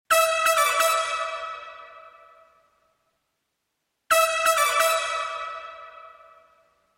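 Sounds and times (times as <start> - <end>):
brass instruments: 0.1 - 2.5, 4.1 - 6.6.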